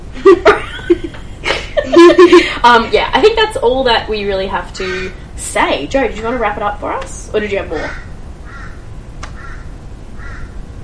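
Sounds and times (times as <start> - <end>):
steady low rumble of outdoor noise: 0.0 - 10.8
laughter: 0.2 - 3.0
speech: 2.6 - 8.0
crow cawing: 4.8 - 5.3, 7.7 - 10.6.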